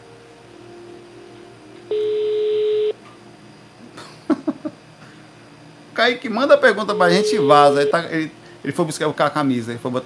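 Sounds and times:
telephone ringback tone on an outgoing call: 0:01.9 - 0:03.0, 0:06.9 - 0:08.1
laughter: 0:04.0 - 0:04.8
speech: 0:06.0 - 0:10.0.

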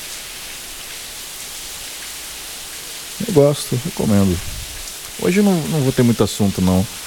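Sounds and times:
steady rain falling outside: 0:00.0 - 0:07.0
speech: 0:03.2 - 0:04.6, 0:05.2 - 0:07.0.

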